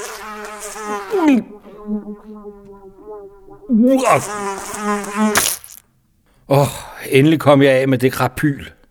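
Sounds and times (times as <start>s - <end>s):
housefly buzzing around a room: 0.0s - 5.8s
speech: 0.7s - 5.8s, 6.5s - 8.8s.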